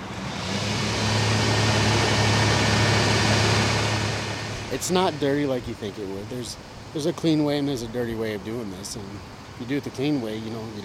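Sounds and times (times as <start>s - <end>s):
pump running to pump out a cesspool: 0.0s - 6.9s
low engine hum: 0.0s - 10.8s
speech: 4.8s - 10.8s.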